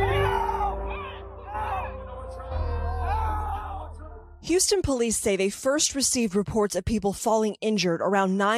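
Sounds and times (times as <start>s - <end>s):
strained cries for help from a concert crowd: 0.0s - 4.1s
dense concert crowd in Houston shouting and screaming: 0.0s - 4.2s
speech: 4.4s - 8.5s.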